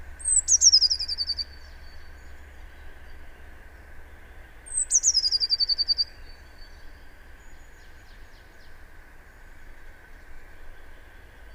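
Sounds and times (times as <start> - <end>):
steady low hum: 0.0 - 11.5
Eurasian blue tit Cyanistes caeruleus trilling: 0.2 - 1.5, 4.7 - 6.1.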